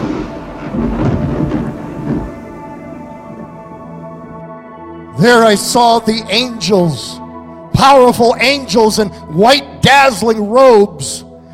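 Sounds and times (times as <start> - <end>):
deep rolling thunder: 0.0 - 2.8
speech: 5.2 - 7.2, 7.8 - 11.3.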